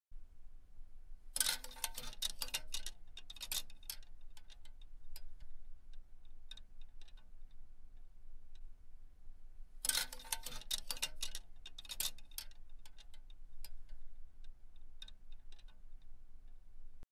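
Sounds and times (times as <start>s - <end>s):
clothes hanger: 1.4s - 5.5s, 9.8s - 14.0s.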